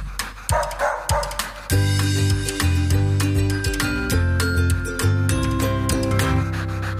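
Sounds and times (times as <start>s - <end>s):
dog barking with sharp yips and woofs: 0.5s - 1.6s
loud music bed with sustained tones: 1.2s - 6.9s.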